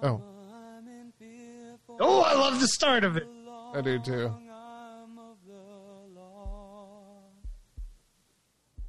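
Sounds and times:
speech: 0.0 - 0.3, 2.0 - 4.4
deep heartbeat thumps at the opening of a song: 6.4 - 6.8, 7.4 - 8.1.

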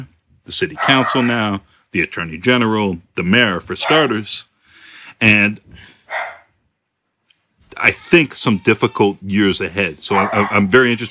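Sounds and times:
speech: 0.0 - 4.5, 5.2 - 5.9, 7.8 - 11.0
dog barking: 0.8 - 1.2, 3.8 - 4.2, 6.1 - 6.5, 10.1 - 10.7.

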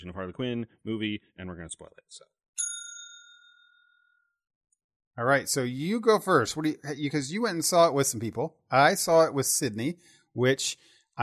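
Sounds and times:
speech: 0.0 - 2.7, 5.2 - 11.2
single bright bell ding: 2.6 - 4.1.

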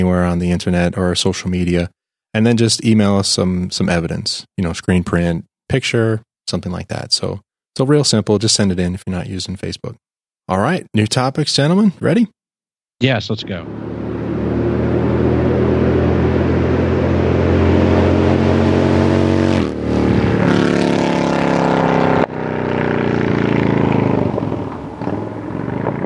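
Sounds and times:
speech: 0.0 - 12.4, 13.0 - 13.8
motorcycle engine revving: 13.4 - 26.0.

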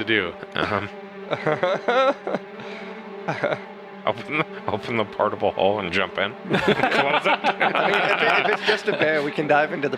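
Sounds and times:
laughter: 0.0 - 9.9
speech: 0.0 - 9.9
swarm of bees buzzing: 0.0 - 9.9.

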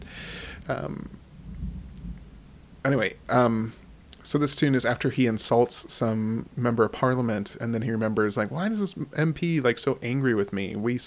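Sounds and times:
thunder rumble: 0.0 - 4.1
speech: 0.7 - 1.2, 2.8 - 11.0.

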